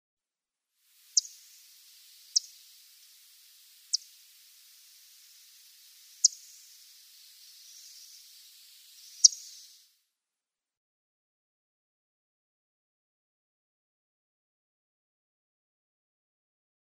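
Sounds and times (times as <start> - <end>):
Blackpoll Warbler calls: 1.0 - 9.8.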